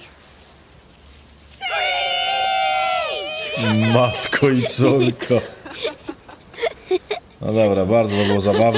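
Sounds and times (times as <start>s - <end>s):
group of people screeching imitating a bird of prey: 1.5s - 5.0s
laughter: 3.4s - 7.3s, 8.0s - 8.7s
speech: 3.7s - 5.9s, 7.4s - 8.7s.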